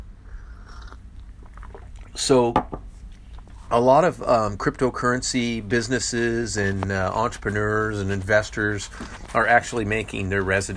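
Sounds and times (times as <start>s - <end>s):
low steady hum: 0.0s - 10.7s
person sipping coffee: 0.3s - 2.3s
speech: 2.2s - 2.8s, 3.7s - 10.7s.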